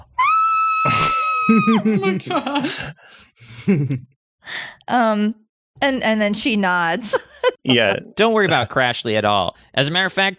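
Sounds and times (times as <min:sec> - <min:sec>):
voice imitating a muffled scream into own wrist: 0:00.0 - 0:01.9
laughter: 0:00.9 - 0:04.1
speech: 0:01.5 - 0:10.3.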